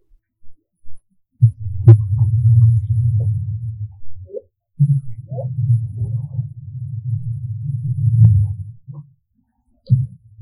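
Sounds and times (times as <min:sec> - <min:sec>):
humpback whale mother and calf calls underwater in Glacier Bay Alaska: 0:01.8 - 0:09.0.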